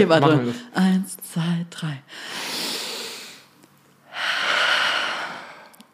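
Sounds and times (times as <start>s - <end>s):
speech: 0.0s - 2.0s
several people breathing deeply together: 2.1s - 5.9s.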